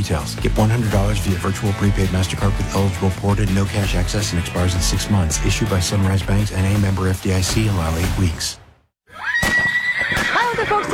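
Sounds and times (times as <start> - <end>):
speech: 0.0 - 8.6, 10.6 - 10.9
horse whinnying in a riding stable: 9.1 - 10.9.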